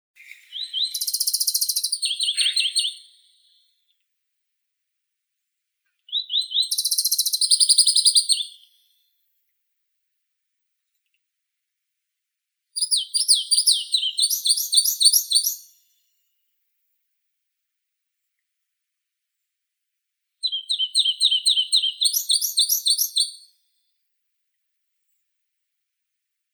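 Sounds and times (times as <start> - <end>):
Pallas's leaf warbler Phylloscopus proregulus singing: 0.2 - 3.1, 6.1 - 8.5, 12.8 - 15.8, 20.4 - 23.4.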